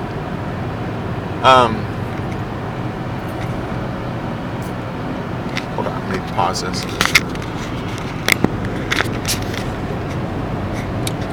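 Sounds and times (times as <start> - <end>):
car cruising at highway speed: 0.0 - 11.3
speech: 1.4 - 1.9, 6.1 - 7.4
person's voice inside the car: 1.4 - 2.0, 5.7 - 7.0.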